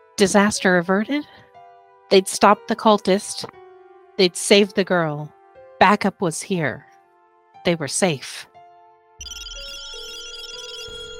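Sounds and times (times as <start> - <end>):
speech: 0.2 - 1.4, 2.1 - 3.6, 4.2 - 6.9, 7.6 - 8.5
two phones ringing with an electronic ringtone of high synthetic tones: 9.2 - 11.1.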